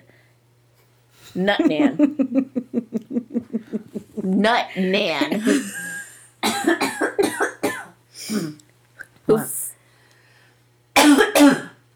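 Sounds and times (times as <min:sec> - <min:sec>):
speech: 0:01.3 - 0:02.6, 0:04.3 - 0:05.8, 0:09.3 - 0:09.5
laughter: 0:01.6 - 0:04.4, 0:05.3 - 0:06.2
person coughing harshly: 0:05.4 - 0:08.6, 0:11.0 - 0:11.8.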